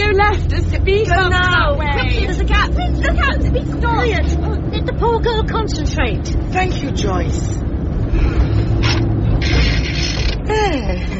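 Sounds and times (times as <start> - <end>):
car engine humming: 0.0 - 11.1
car gear change clunks and grinding: 0.0 - 11.1
speech: 5.0 - 8.6, 10.5 - 11.1.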